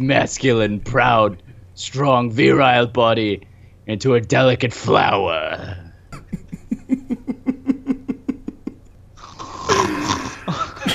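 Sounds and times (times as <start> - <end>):
speech: 0.0 - 6.4
laughter: 6.1 - 8.8, 10.4 - 10.9
voice imitating a man's loud snore: 9.2 - 10.8.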